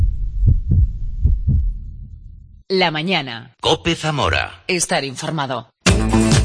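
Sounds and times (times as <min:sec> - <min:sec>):
heartbeat thumping: 0:00.0 - 0:02.6
soft low rumble: 0:00.0 - 0:02.7
speech: 0:02.7 - 0:06.3.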